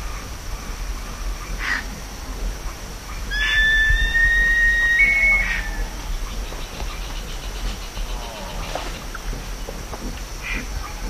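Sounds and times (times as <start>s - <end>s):
background hiss: 0.0s - 11.0s
black-chested buzzard-eagle whistle: 3.3s - 5.9s.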